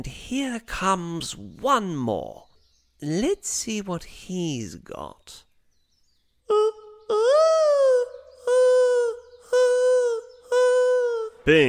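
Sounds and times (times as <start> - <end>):
speech: 0.0 - 2.4, 3.0 - 5.5, 11.4 - 11.6
dove mating call cooing: 6.5 - 11.4.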